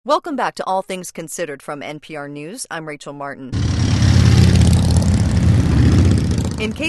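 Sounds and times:
speech: 0.1s - 4.1s, 6.6s - 6.8s
thousands of motorcycles riding together in a Memorial Day parade: 3.6s - 6.8s.

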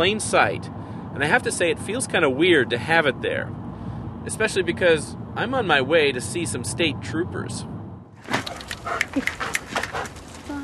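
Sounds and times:
speech: 0.0s - 3.6s, 4.2s - 9.6s
drug-sniffing police dog snuffling breaths: 8.3s - 10.6s.

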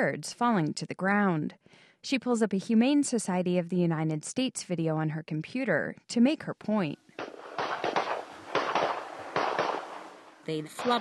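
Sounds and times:
speech: 0.0s - 7.3s, 10.4s - 10.9s
shotguns firing at a pigeon shoot: 7.2s - 10.2s.

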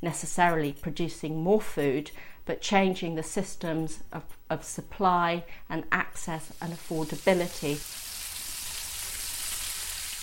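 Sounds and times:
speech: 0.0s - 8.0s
homemade hamburgers sizzling while frying: 6.5s - 10.2s.

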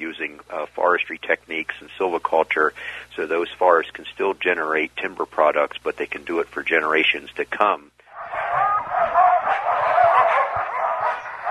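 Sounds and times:
speech: 0.0s - 8.0s
pack of sled dogs barking, yelping and howling: 8.1s - 11.4s.

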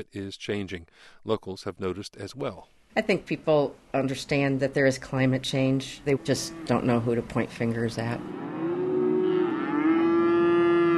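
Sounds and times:
speech: 0.0s - 8.5s
cow on a grass-fed cattle ranch in western Montana mooing: 6.1s - 7.2s, 8.2s - 10.9s.

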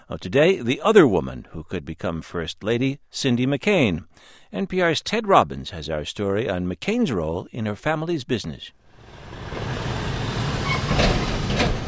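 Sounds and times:
speech: 0.1s - 8.8s
delivery trucks idling at warehouses: 9.0s - 11.8s
truck air brakes hissing: 9.0s - 11.8s.

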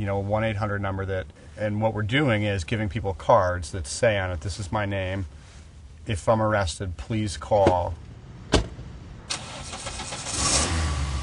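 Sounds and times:
speech: 0.0s - 5.4s, 6.1s - 8.0s
car engine cranking, starting and idling: 7.8s - 11.2s
car door shutting: 8.5s - 8.8s.

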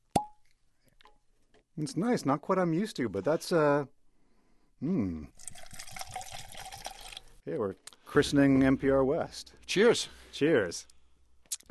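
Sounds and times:
speech: 1.8s - 4.0s, 4.8s - 5.4s, 7.4s - 10.9s
bourbon being poured into glasses: 5.3s - 7.4s.

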